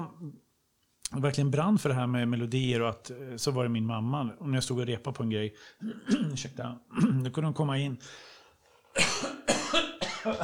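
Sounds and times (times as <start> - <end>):
speech: 1.1 - 8.3, 9.0 - 10.4
loud coughing fit with harsh raspy coughs: 9.0 - 10.4.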